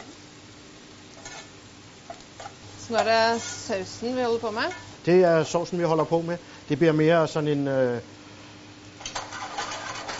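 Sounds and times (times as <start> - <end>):
mushrooms and onions frying in butter: 0.0 - 10.1
speech: 2.9 - 8.2.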